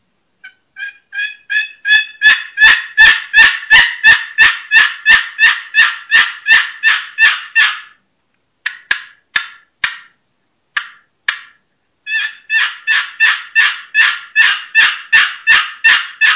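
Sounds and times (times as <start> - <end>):
turkey box call played as rhythmic yelps: 0.4 - 8.0, 12.1 - 16.3.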